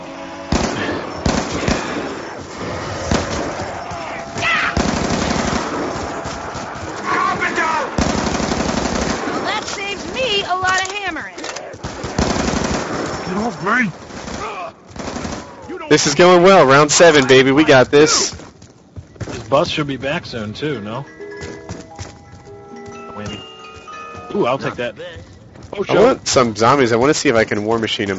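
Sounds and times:
gunfire in a zombie-mode shooter video game: 0.5s - 17.1s
speech: 15.9s - 18.4s, 19.5s - 21.2s, 24.4s - 28.1s.

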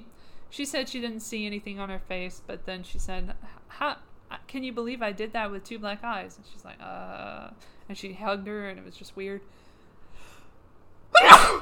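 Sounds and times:
speech: 0.5s - 9.6s
person sneezing: 11.2s - 11.6s.

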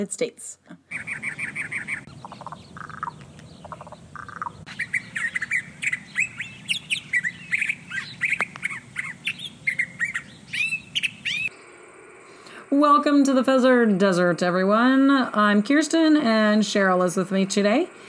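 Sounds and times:
speech: 0.0s - 1.2s, 12.7s - 18.0s
low hum: 0.0s - 18.0s
several backyard birds chirping: 0.0s - 18.0s.

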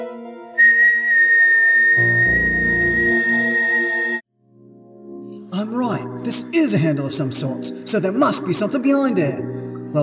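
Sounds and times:
person whistling one long high note: 0.6s - 4.2s
speech: 6.3s - 10.0s.

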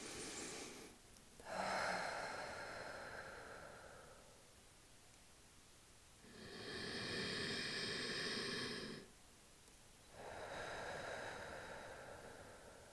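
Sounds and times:
slow deep breaths during a guided meditation: 0.0s - 4.5s, 6.2s - 9.1s, 10.1s - 12.9s.

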